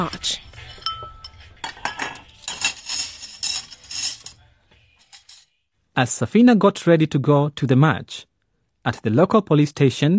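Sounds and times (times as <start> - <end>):
speech: 0.0 - 0.5, 6.0 - 10.1
dishes and cutlery being cleared away: 0.6 - 5.6.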